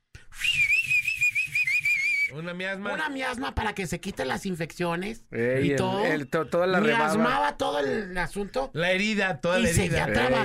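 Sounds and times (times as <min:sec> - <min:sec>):
chifle whistle blown in a long shrill steady tone: 0:00.4 - 0:02.4
speech: 0:02.3 - 0:10.4.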